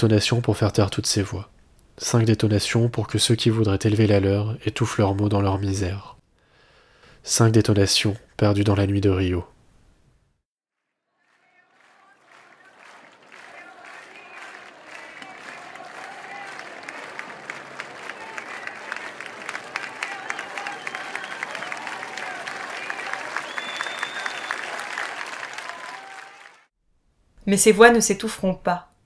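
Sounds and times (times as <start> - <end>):
speech: 0.0 - 6.2, 7.2 - 9.5, 27.5 - 28.9
crowd clapping in the street accompanying a coffin: 11.1 - 26.7.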